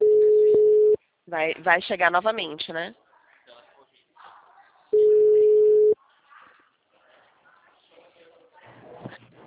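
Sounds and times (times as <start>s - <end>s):
phone busy tone after a dropped call: 0.0s - 1.0s, 5.0s - 6.0s
speech: 1.3s - 3.0s.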